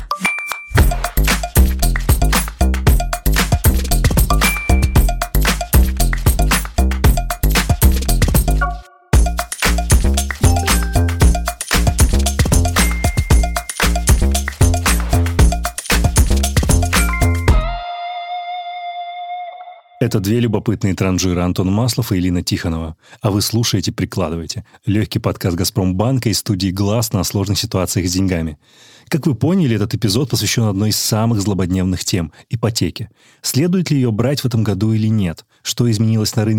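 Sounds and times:
upbeat podcast jingle with bell-like chimes over a punchy beat: 0.1s - 2.3s, 3.0s - 17.8s
speech: 20.1s - 36.5s.

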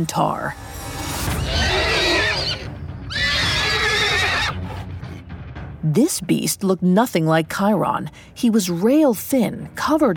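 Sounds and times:
speech: 0.0s - 1.7s, 5.8s - 10.1s
horse whinnying: 1.4s - 4.8s.

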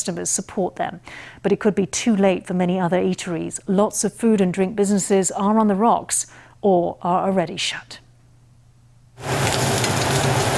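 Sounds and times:
speech: 0.0s - 8.0s
fresh shrimp, squid and scallops searing in a hot pan in a restaurant kitchen: 9.2s - 10.5s.

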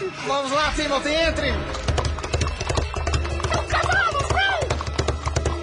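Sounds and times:
speech: 0.2s - 1.8s
horse hooves clip-clopping: 1.7s - 5.6s.

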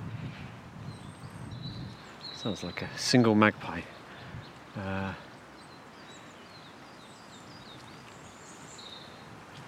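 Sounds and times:
steady background hiss: 0.0s - 9.6s
Siskin singing in a spring woodland beside a stream in Monmouthshire: 0.8s - 9.6s
speech: 2.4s - 4.0s, 4.8s - 5.3s.

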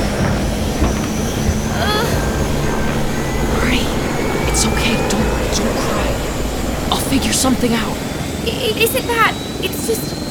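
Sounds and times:
voice-like sweep: 0.0s - 8.6s
helicopter engine starting up: 0.0s - 9.6s
speech: 7.1s - 10.2s.

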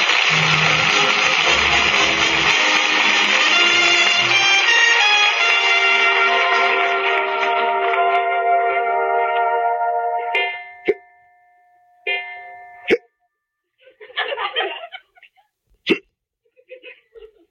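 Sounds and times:
sustained musical tones: 0.0s - 12.9s
sharp abrupt hiccups: 12.9s - 13.1s, 15.8s - 16.1s
laughter: 13.8s - 15.4s, 16.5s - 17.5s.

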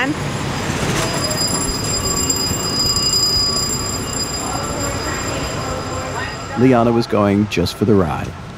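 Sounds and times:
speech: 0.0s - 0.5s, 6.6s - 8.4s
commuter train rumbling at a station: 0.0s - 8.5s
faint high-pitched wheel squeal: 0.4s - 6.6s.

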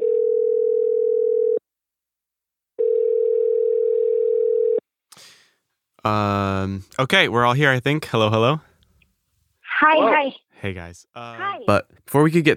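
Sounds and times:
long steady electronic telephone call connecting tones: 0.0s - 1.6s, 2.8s - 4.8s
speech: 6.0s - 8.7s, 9.8s - 12.5s.

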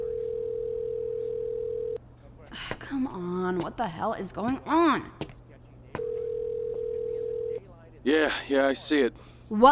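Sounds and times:
telephone ringback tone heard through a handset: 0.0s - 2.0s, 6.0s - 7.6s
speech: 2.6s - 5.3s, 8.1s - 9.6s.

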